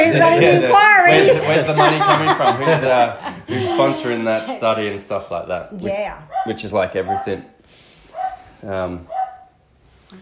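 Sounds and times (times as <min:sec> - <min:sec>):
laughter: 0:00.0 - 0:05.1
speech: 0:00.1 - 0:07.6, 0:08.6 - 0:09.2
little puppy barking: 0:06.3 - 0:07.5, 0:08.1 - 0:08.5, 0:09.1 - 0:09.6.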